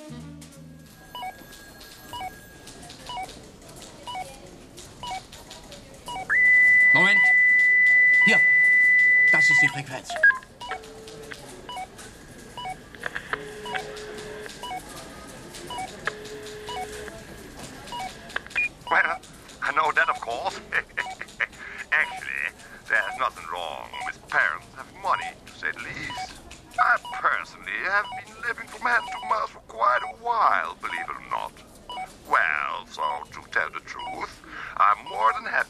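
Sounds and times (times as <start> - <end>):
police frequency scanner for eavesdropping on car phones beeping: 0.8 - 4.4, 5.0 - 5.4, 6.0 - 35.6
faint radio-like chatter: 9.3 - 35.6.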